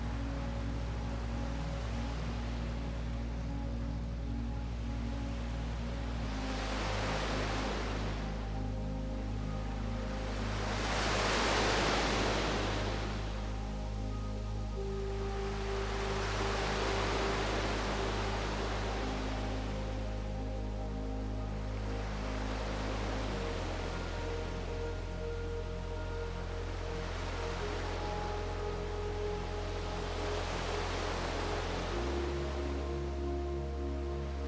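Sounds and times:
ocean waves rolling in and washing out: 0.0 - 34.4
soft calm relaxing music with low drone and held tones: 0.0 - 34.4.

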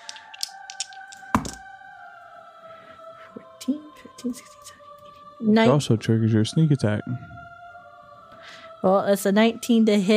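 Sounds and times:
two dice rolling on a hard tabletop: 0.0 - 1.6
speech: 3.7 - 4.8, 5.4 - 7.3, 8.8 - 10.1.

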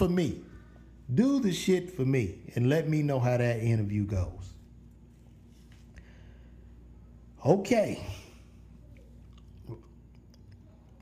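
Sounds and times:
speech: 0.0 - 0.5, 1.1 - 4.5, 7.4 - 8.2
person chewing gum: 8.9 - 11.0.

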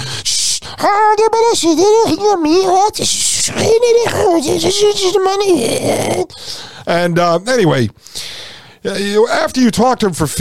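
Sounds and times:
person imitating a muffled high-pitched underwater-sounding voice: 0.0 - 6.4
speech: 0.8 - 8.2, 8.8 - 10.3.

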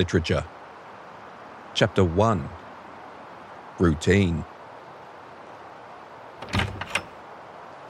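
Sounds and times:
speech: 0.0 - 0.6, 1.8 - 2.6, 3.8 - 4.5
wooden cabin door thud: 6.4 - 7.1
wooden cabin door latch and handle clunking: 6.4 - 7.2.

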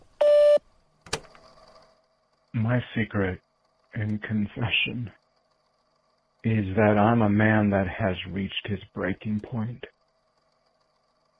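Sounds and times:
voicemail beep tone: 0.2 - 0.6
speech: 2.6 - 5.2, 6.4 - 9.9.

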